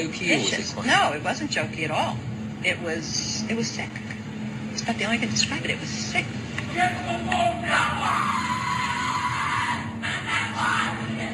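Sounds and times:
speech: 0:00.0 - 0:04.2, 0:04.8 - 0:08.5
crowd shouting and screaming at a secret society initiation ceremony: 0:06.7 - 0:11.3.

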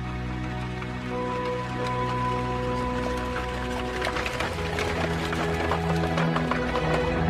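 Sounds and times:
horse hooves clip-clopping: 0:00.0 - 0:07.2
horse-drawn coach clattering rattle: 0:00.7 - 0:07.2.

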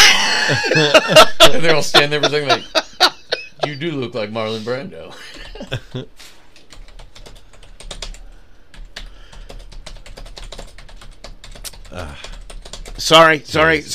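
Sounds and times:
laughter: 0:00.0 - 0:04.0, 0:05.1 - 0:06.2
speech: 0:00.5 - 0:06.4, 0:11.9 - 0:12.3, 0:13.0 - 0:13.9
rapid forceful typing on a computer keyboard: 0:06.6 - 0:13.1.

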